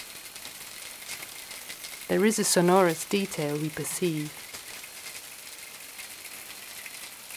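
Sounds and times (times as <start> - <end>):
refrigerator ultrasonic emission in a wooden bar kitchen: 0.0 - 5.0
speech: 2.1 - 4.4.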